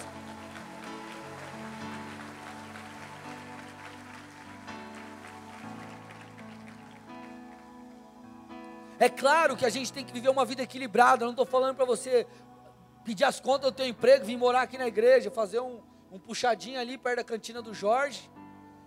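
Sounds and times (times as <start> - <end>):
audience applause: 0.0 - 7.7
sustained keyboard chords: 0.0 - 15.0
speech: 9.0 - 18.4.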